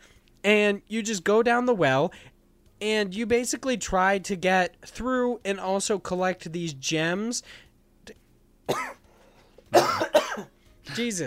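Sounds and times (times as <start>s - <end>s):
speech: 0.4s - 9.0s, 9.7s - 11.2s
person coughing harshly: 8.7s - 9.0s, 9.7s - 10.5s.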